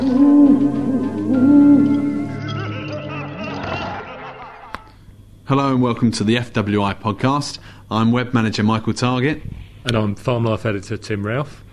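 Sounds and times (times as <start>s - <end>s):
owl hooting: 0.0s - 2.8s
laughter: 2.4s - 4.9s
speech: 5.5s - 11.6s.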